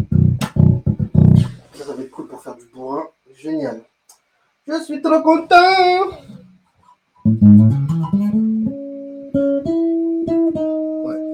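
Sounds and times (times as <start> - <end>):
plucked guitar notes on the strings: 0.0 - 1.6, 7.2 - 11.3
speech: 2.7 - 3.9, 4.7 - 6.4.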